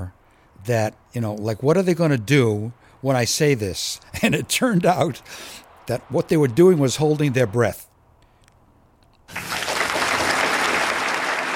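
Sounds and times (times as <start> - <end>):
speech: 0.6 - 7.9
audience of about 1,000 people applauding: 9.3 - 11.5.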